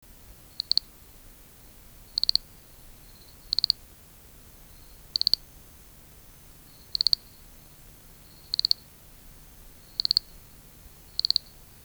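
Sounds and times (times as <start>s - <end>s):
Eleuthe auriculatus frog calling: 0.1s - 11.8s.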